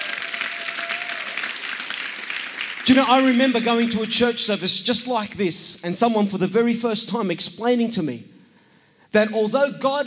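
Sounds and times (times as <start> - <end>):
crowd applause at a church service: 0.0 - 4.6
speech: 2.9 - 8.3, 9.2 - 10.0.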